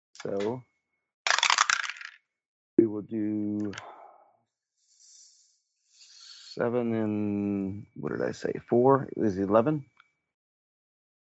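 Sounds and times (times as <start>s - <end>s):
speech: 0.2s - 0.7s, 2.8s - 4.0s, 6.6s - 9.9s
dice rolling on a hard table: 1.3s - 2.2s.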